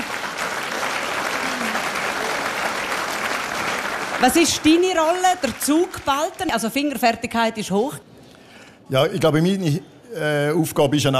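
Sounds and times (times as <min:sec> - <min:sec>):
audience applause: 0:00.0 - 0:07.0
speech: 0:04.2 - 0:08.1, 0:08.9 - 0:11.1.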